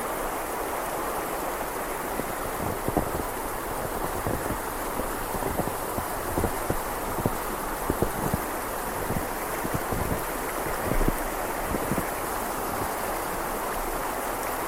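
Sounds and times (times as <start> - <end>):
rushing snowy river: 0.0 - 14.6
low wind rumble: 2.2 - 13.4.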